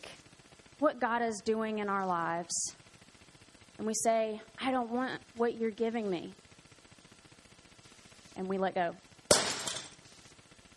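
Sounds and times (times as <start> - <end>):
speech: 0.8 - 2.8, 3.8 - 6.4, 8.4 - 9.1
glass object shattering: 9.3 - 10.0.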